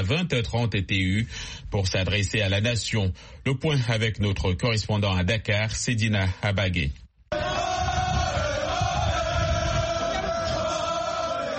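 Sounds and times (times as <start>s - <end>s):
speech: 0.1s - 7.5s
huge crowd cheering and shouting in celebration: 7.3s - 11.5s.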